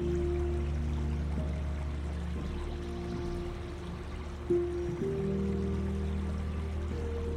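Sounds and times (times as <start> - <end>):
gently flowing river water: 0.0 - 7.3
low sustained humming tones: 0.0 - 7.3.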